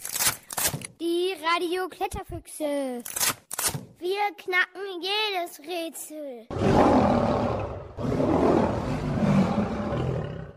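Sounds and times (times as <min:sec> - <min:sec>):
speech: 0:01.0 - 0:03.4, 0:04.0 - 0:07.2
lion roaring: 0:06.5 - 0:10.5.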